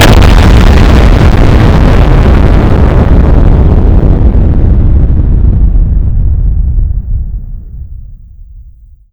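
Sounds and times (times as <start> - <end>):
nuclear explosion: 0.0 - 9.1.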